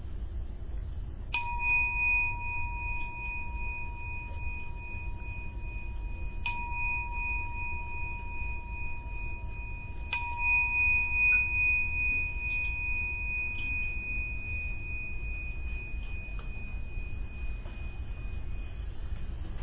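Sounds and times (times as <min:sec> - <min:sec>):
quiet low rumble: 0:00.0 - 0:19.6
meditation gong ringing to end a meditation: 0:01.4 - 0:19.6.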